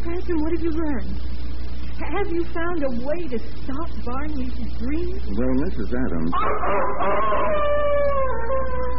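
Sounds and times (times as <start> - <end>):
speech: 0.2 - 1.3, 2.0 - 7.9
dog howling in a long wavering wail: 6.3 - 8.9.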